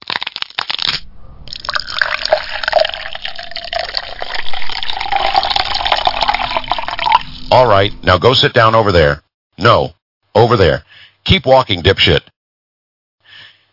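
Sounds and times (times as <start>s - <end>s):
glass clinking and handling: 1.5s - 7.3s
Canadian whiskey pouring into a tall glass with no ice: 1.5s - 7.5s
speech: 7.8s - 12.3s.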